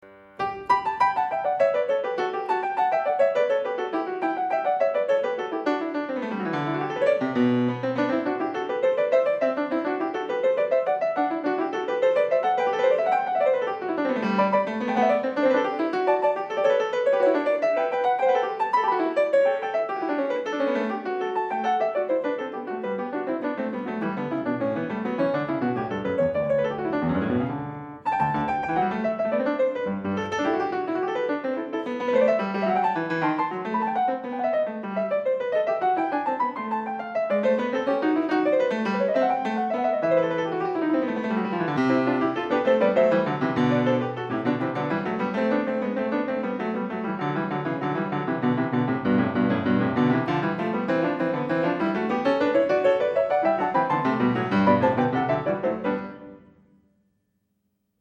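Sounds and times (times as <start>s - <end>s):
two-manual harpsichord piece: 0.0s - 56.6s.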